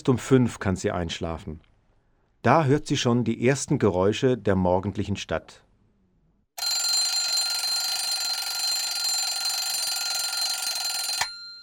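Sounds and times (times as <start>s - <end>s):
speech: 0.0s - 1.7s, 2.4s - 5.6s
electronic alarm clock ringing in the morning: 6.6s - 11.6s.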